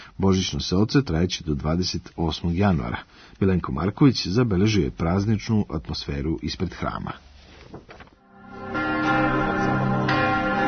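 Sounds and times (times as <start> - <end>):
speech: 0.2 - 8.0
church bells ringing on top of Vračar in Belgrade for Christmas: 8.4 - 10.6.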